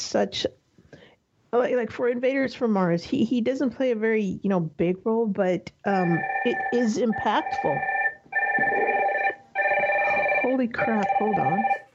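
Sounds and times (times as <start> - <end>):
speech: 0.1 - 0.6, 1.5 - 8.0, 8.6 - 9.0, 10.5 - 11.8
phone ringing with an electronic warble: 6.0 - 11.9.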